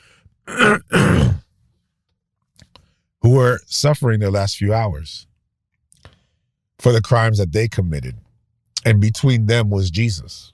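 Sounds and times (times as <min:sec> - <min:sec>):
person clearing throat: 0:00.5 - 0:01.4
speech: 0:03.2 - 0:05.3, 0:06.8 - 0:08.2, 0:08.8 - 0:10.5.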